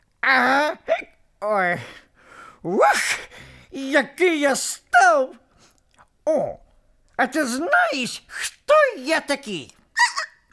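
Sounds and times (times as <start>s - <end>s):
speech: 0.2s - 2.0s, 2.6s - 5.4s, 6.3s - 6.6s, 7.2s - 9.8s
person imitating hiccups: 0.3s - 1.2s.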